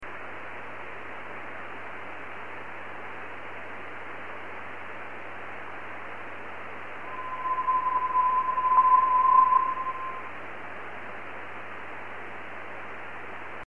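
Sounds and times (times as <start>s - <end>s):
meteor scatter radio echoes from asteroid: 7.1s - 10.4s.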